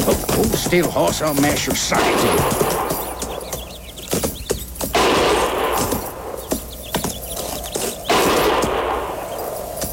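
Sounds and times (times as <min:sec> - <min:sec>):
steady noisy background: 0:00.0 - 0:09.9
speech: 0:00.7 - 0:03.0
gunfire in the low hills: 0:04.9 - 0:06.2, 0:08.1 - 0:09.4.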